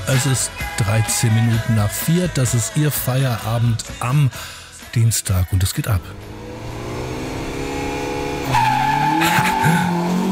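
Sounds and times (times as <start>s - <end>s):
speech: 0.1s - 6.8s, 8.5s - 10.0s
rallycross car engine roaring at a race start: 6.0s - 10.3s
rallycross car tyre squeal: 8.4s - 10.1s.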